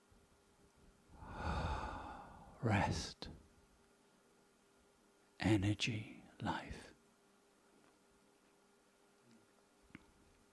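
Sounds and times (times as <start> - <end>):
slow deep inhalation: 1.2 - 3.0
speech: 2.6 - 3.4, 5.4 - 6.9.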